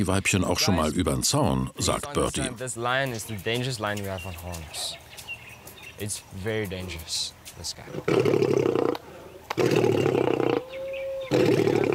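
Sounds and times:
speech: 0:00.0 - 0:05.0, 0:06.0 - 0:08.9, 0:09.6 - 0:10.2
lion roaring: 0:07.9 - 0:11.9.

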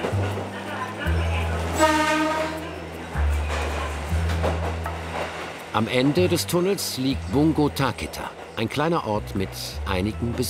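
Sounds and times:
train rocking and rumbling along the tracks: 0:00.0 - 0:10.4
brief horn-like harmonic tone: 0:01.7 - 0:02.8
speech: 0:05.8 - 0:10.4.

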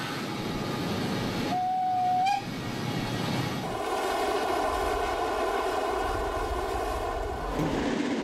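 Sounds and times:
steam train rumbling along the track: 0:00.0 - 0:08.2
steam train whistle: 0:01.5 - 0:02.5.

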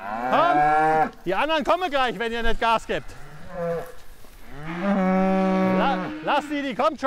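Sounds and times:
cow mooing while being herded on a farm: 0:00.0 - 0:01.2, 0:03.0 - 0:06.7
speech: 0:01.2 - 0:04.0, 0:06.3 - 0:07.0.

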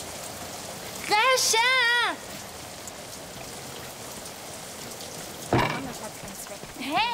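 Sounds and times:
steady rain falling: 0:00.0 - 0:07.1
speech: 0:01.1 - 0:02.4, 0:06.0 - 0:07.1.

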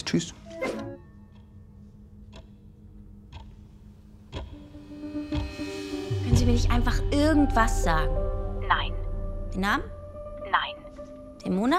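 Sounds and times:
speech: 0:00.1 - 0:00.4, 0:06.5 - 0:09.0, 0:09.6 - 0:10.0, 0:11.5 - 0:11.7
clock ticking: 0:01.2 - 0:05.6.

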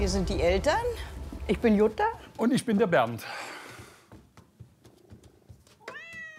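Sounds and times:
speech: 0:00.1 - 0:03.5
male cat meowing: 0:05.8 - 0:06.3.

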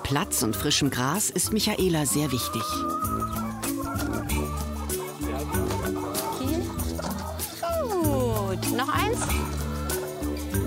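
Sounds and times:
flock of free-range hens clucking and chattering: 0:00.0 - 0:10.6
speech: 0:00.1 - 0:04.7, 0:08.6 - 0:09.6.

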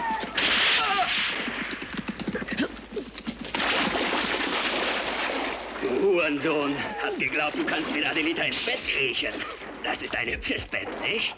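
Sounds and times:
gunfire: 0:00.2 - 0:02.4, 0:03.5 - 0:06.1, 0:07.2 - 0:10.2
speech: 0:06.2 - 0:11.3.

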